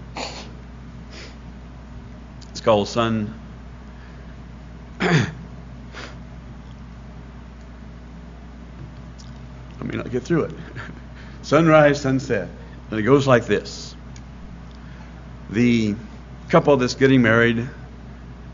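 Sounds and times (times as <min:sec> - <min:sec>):
speech: 0:02.6 - 0:03.4, 0:10.1 - 0:13.9, 0:15.5 - 0:17.8
person blowing nose with a honking snort: 0:05.9 - 0:06.2.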